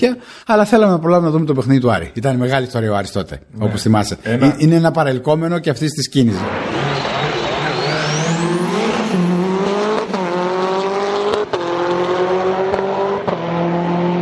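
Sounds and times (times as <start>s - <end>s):
speech: 0.0s - 7.0s
Lancia Integrale rally car engine revving and accelerating through the gears: 6.4s - 14.2s.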